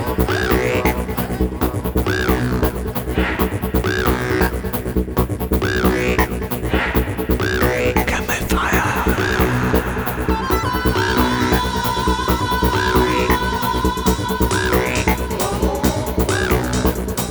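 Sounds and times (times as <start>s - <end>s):
vocal effect: 0.0s - 4.9s, 5.7s - 17.3s.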